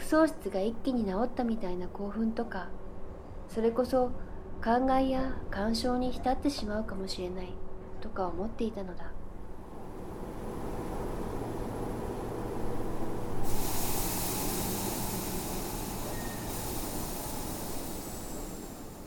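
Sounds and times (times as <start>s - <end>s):
speech: 0.1s - 2.8s, 3.5s - 9.1s
train rumbling while arriving at station: 4.1s - 19.0s
pneumatic hissing of train doors opening: 13.4s - 19.0s.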